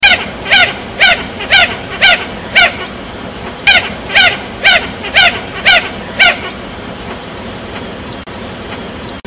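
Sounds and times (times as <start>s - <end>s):
Fulica armillata red-gartered coot: 0.0s - 3.0s, 3.6s - 6.6s.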